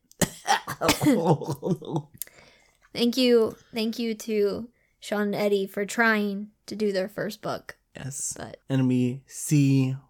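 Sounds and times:
person coughing: 0:00.2 - 0:02.0
speech: 0:00.8 - 0:02.2, 0:02.9 - 0:10.0.

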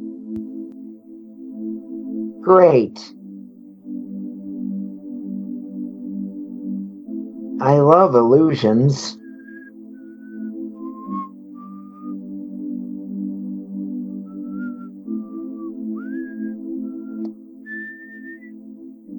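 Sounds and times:
steady humming low drone: 0:00.0 - 0:08.1, 0:09.2 - 0:19.1
speech: 0:02.4 - 0:03.2, 0:07.7 - 0:09.2
clear melodic whistle: 0:09.2 - 0:12.6, 0:13.7 - 0:18.6.

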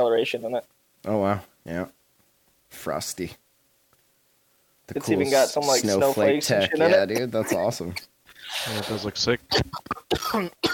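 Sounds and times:
speech: 0:00.0 - 0:02.0, 0:02.7 - 0:03.4, 0:04.9 - 0:10.7
harsh raspy coughing after smoking a dab: 0:05.6 - 0:10.7.

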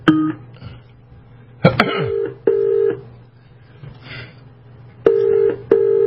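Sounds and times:
telephone ring tones on a call line: 0:02.1 - 0:03.0, 0:05.0 - 0:06.0.

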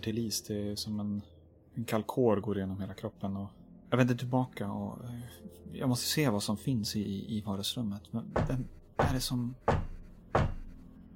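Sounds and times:
speech: 0:00.0 - 0:09.8
knocking: 0:08.4 - 0:10.8.

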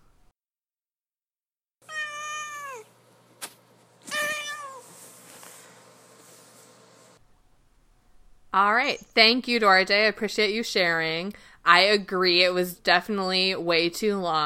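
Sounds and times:
pet cat meowing: 0:01.8 - 0:02.9, 0:04.1 - 0:04.8
speech: 0:08.5 - 0:14.4.

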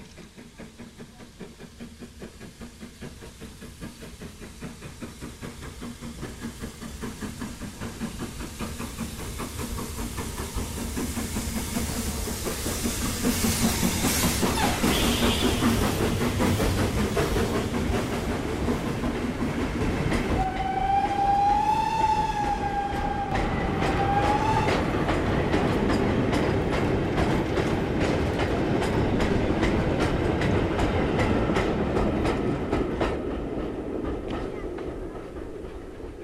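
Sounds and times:
goods train rumbling through a station with wagons clattering: 0:00.0 - 0:36.2
long train horn blast: 0:14.6 - 0:15.6, 0:20.4 - 0:24.8.

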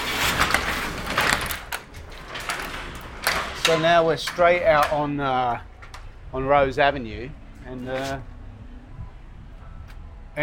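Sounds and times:
two sets of double doors swinging open with a rushing scrape: 0:00.0 - 0:06.7
steady outdoor ambience in nice weather near the beach: 0:00.0 - 0:10.4
speech: 0:03.7 - 0:05.7, 0:06.3 - 0:08.3.

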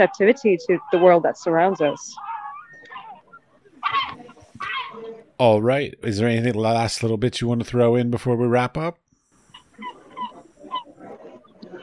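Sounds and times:
speech: 0:00.0 - 0:02.3, 0:05.4 - 0:09.0
seagull squawking: 0:00.0 - 0:05.2, 0:09.5 - 0:11.8.

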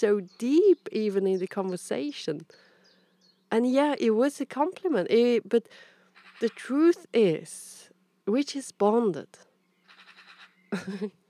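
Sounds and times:
speech: 0:00.0 - 0:02.6, 0:03.5 - 0:09.5, 0:10.7 - 0:11.2
magpie rattling chatter: 0:06.1 - 0:07.1, 0:09.8 - 0:10.9.

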